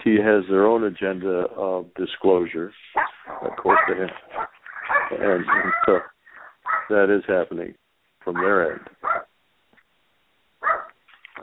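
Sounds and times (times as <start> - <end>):
speech: 0.0 - 4.5, 5.1 - 6.1, 6.9 - 9.3
dog barking: 3.0 - 6.9, 8.4 - 9.3, 10.6 - 11.0.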